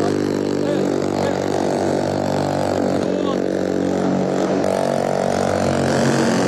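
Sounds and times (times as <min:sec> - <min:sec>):
attack boat engines approaching during a hostage-rescue demonstration: 0:00.0 - 0:06.4.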